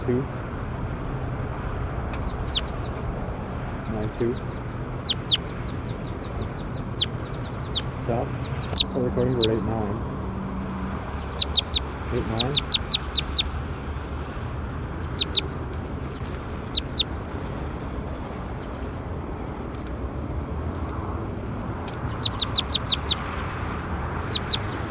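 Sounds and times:
steady loud low rumbling noise: 0.0s - 24.9s
speech: 0.1s - 0.6s, 3.9s - 4.6s, 8.1s - 10.1s, 12.1s - 13.4s
bird calling in short high chirps: 2.1s - 9.6s, 11.0s - 13.6s, 15.0s - 17.2s, 21.9s - 23.3s, 24.2s - 24.9s.

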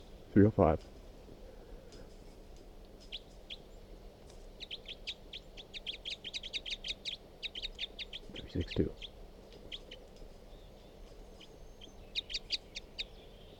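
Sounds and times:
speech: 0.4s - 1.0s, 8.6s - 9.0s
high chirping bird calls outdoors: 4.5s - 13.5s.

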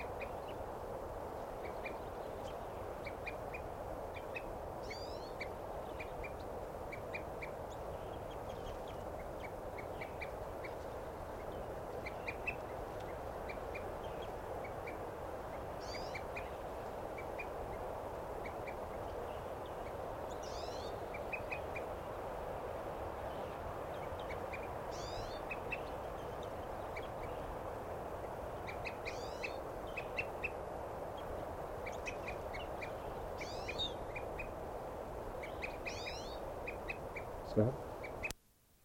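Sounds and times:
noise: 0.0s - 38.8s
bird chirps: 1.6s - 16.6s, 19.4s - 21.9s, 23.3s - 27.5s, 28.6s - 30.6s, 31.9s - 34.6s, 35.4s - 38.4s
bird at a water hole giving repeated tooting calls: 1.6s - 17.8s, 18.4s - 21.9s, 23.3s - 27.6s, 28.2s - 34.6s, 35.4s - 38.4s.

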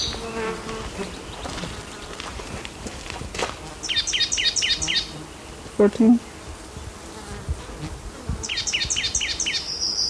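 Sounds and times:
black-throated gray warbler singing: 0.0s - 2.7s, 3.8s - 6.4s, 8.4s - 10.0s
constant hiss: 0.0s - 10.0s
speech: 0.6s - 1.2s, 5.8s - 6.3s.

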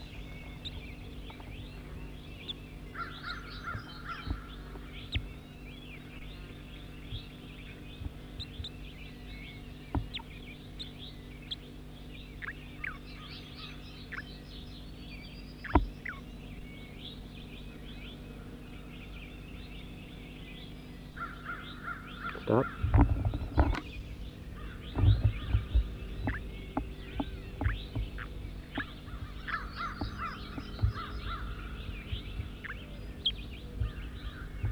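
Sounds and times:
bird chirps: 0.0s - 34.6s
steady low hum: 0.0s - 34.6s
crow-like caws: 21.2s - 23.7s, 27.6s - 32.8s.

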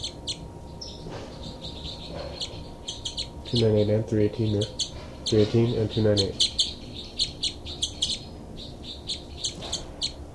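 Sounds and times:
low steady hum: 0.0s - 10.3s
two birds calling in short high-pitched chirps: 0.0s - 10.3s
speech: 3.5s - 6.5s.

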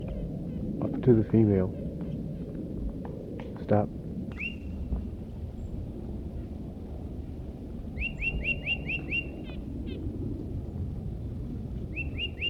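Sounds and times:
steady low rumble: 0.0s - 12.4s
speech: 1.0s - 1.8s, 3.7s - 4.0s
tufted titmouse whistling in woods: 4.3s - 4.7s, 8.0s - 9.5s, 12.0s - 12.4s.

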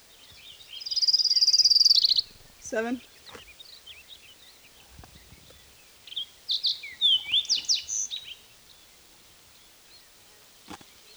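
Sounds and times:
fox sparrow singing: 0.0s - 8.5s
speech: 2.7s - 3.2s.

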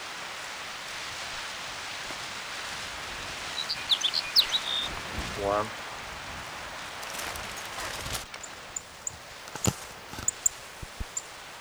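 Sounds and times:
soft steady hiss: 0.0s - 11.5s
sparrow chirping: 2.6s - 11.5s
speech: 5.4s - 5.8s.

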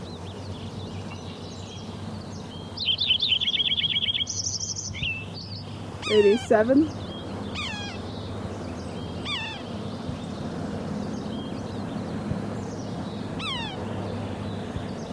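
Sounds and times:
low background hum: 0.0s - 15.1s
red-breasted sapsucker nasal squealing mews while flying into a willow: 2.7s - 10.4s, 12.8s - 14.0s
speech: 6.1s - 7.0s.

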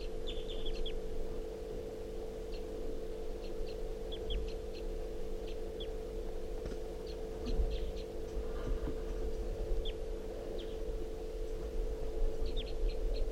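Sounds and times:
wild bird chirping in short high calls: 0.0s - 1.2s, 2.4s - 6.1s, 7.0s - 8.4s, 9.2s - 11.0s, 12.3s - 13.3s
steady low hum: 0.0s - 13.3s.

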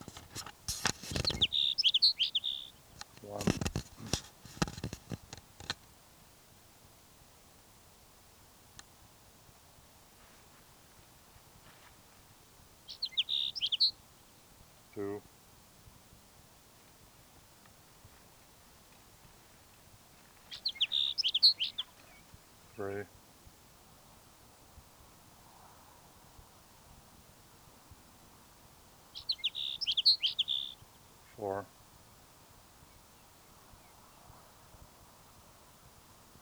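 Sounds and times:
Sage Sparrow singing: 0.0s - 5.8s, 12.8s - 14.0s, 20.2s - 23.0s, 29.1s - 31.6s
speech: 22.8s - 23.2s, 31.4s - 31.8s.

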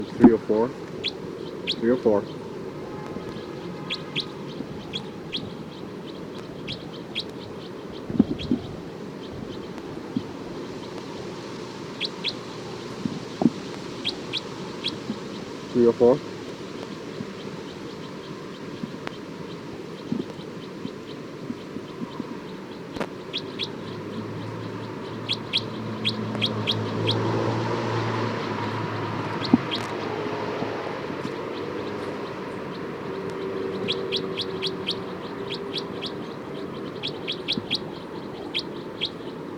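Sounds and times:
speech: 0.0s - 1.2s, 1.8s - 2.4s, 15.8s - 16.3s
bird alarm calls: 0.0s - 39.5s
low hiss: 0.0s - 39.5s.

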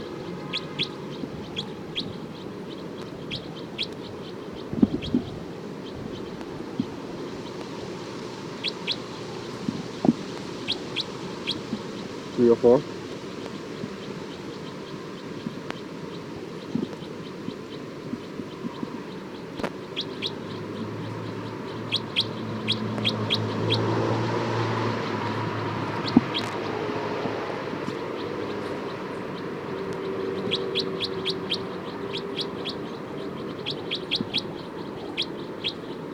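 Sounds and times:
tagged bird alarm calls: 0.0s - 36.1s.

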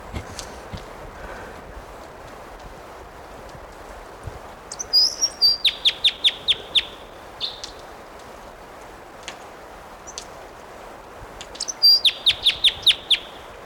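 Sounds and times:
quiet ticks and rustles: 0.0s - 5.4s, 7.4s - 11.8s
steady outdoor hiss: 0.0s - 13.6s
male bird singing sharp chirps and a thin whistle: 4.7s - 7.8s, 11.6s - 13.4s.

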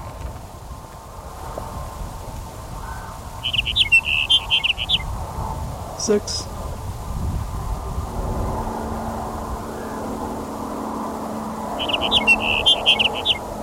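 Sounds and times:
broadband road roar on a highway: 0.0s - 13.6s
truck engine and tire rumble on a highway: 0.0s - 13.6s
speech: 6.0s - 6.5s.

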